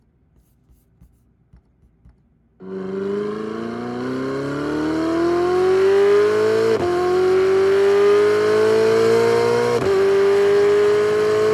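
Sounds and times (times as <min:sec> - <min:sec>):
Ferrari Amalfi engine revving: 0:02.6 - 0:11.5.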